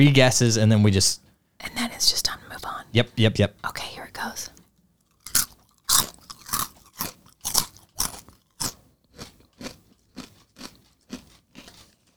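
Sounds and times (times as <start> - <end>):
speech: 0.0 - 4.5
crunchy Cheeto chips bitten and chewed during a blindfolded taste test: 4.2 - 12.1.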